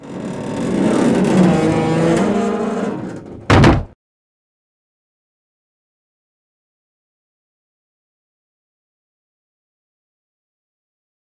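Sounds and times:
bridge moving: 0:00.0 - 0:04.0.

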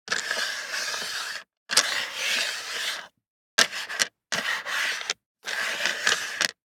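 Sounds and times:
six dice sliding on plastic: 0:00.1 - 0:06.6.

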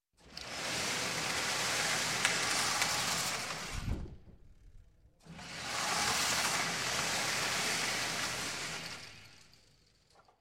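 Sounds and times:
firing range paper target sliding on a track: 0:00.3 - 0:04.2, 0:05.3 - 0:09.5.

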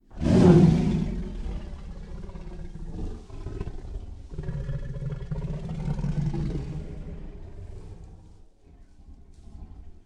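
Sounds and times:
tigers giving long roars: 0:00.1 - 0:08.4
tigers snarling: 0:00.1 - 0:10.0.

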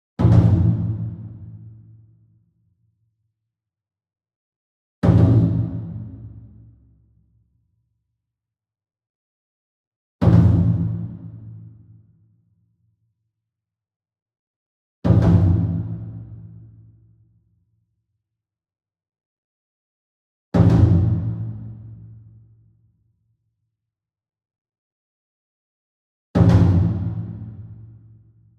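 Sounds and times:
28 inch taiko drum hit with double soft beater: 0:00.2 - 0:01.9, 0:05.0 - 0:06.8, 0:10.2 - 0:11.8, 0:15.1 - 0:16.9, 0:20.6 - 0:22.3, 0:26.4 - 0:28.2.

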